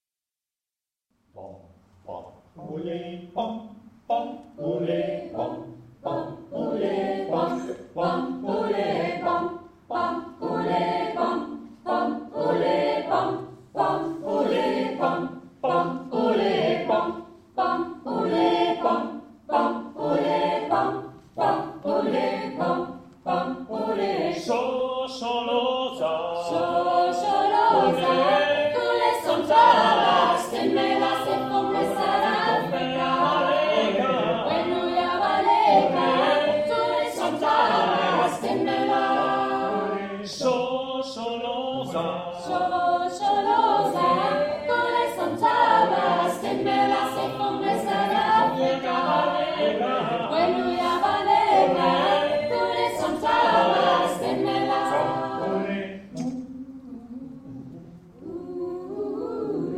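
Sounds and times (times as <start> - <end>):
African traditional choir singing: 2.6 - 59.7.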